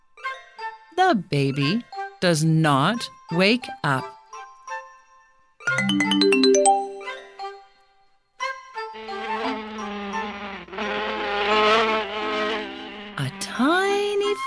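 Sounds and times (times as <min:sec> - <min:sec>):
speech: 0:01.1 - 0:04.2, 0:05.9 - 0:06.3
brief chiming tones: 0:05.7 - 0:07.4
housefly buzzing and zipping past: 0:08.9 - 0:14.4.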